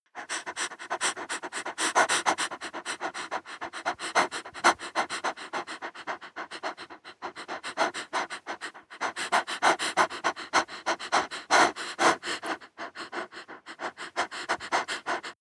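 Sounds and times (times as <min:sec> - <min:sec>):
woman breathing fast and shallow: 0:00.1 - 0:15.3.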